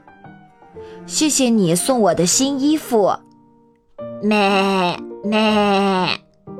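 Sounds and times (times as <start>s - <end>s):
speech: 0.8s - 3.3s, 4.2s - 6.2s
sheep bleating: 4.2s - 6.2s.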